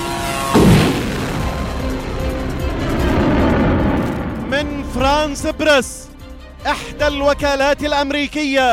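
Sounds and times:
heavy explosion boom in Riyadh Saudi Arabia: 0.5s - 5.4s
long low rumble after an explosion: 0.6s - 6.6s
speech: 5.0s - 8.7s.

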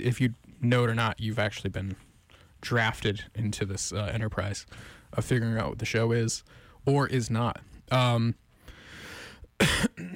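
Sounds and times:
speech: 0.0s - 8.4s, 9.6s - 10.1s
sharp cough: 9.6s - 10.1s.

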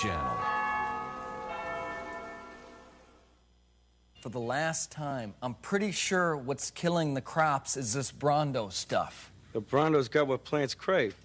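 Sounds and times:
church bell tolling: 0.0s - 3.3s
speech: 4.2s - 11.2s.

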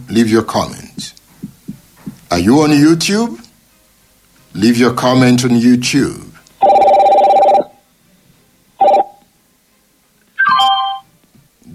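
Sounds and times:
speech: 0.0s - 1.2s, 2.3s - 3.4s, 4.5s - 6.3s
electronic ringtone of an incoming WhatsApp call: 6.6s - 7.8s, 8.8s - 9.2s, 10.4s - 11.1s.

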